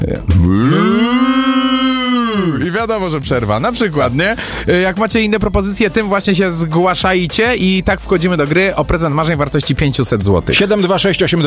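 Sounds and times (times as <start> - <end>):
speech: 0.1 - 0.9, 2.8 - 11.4
cow mooing: 0.3 - 2.6.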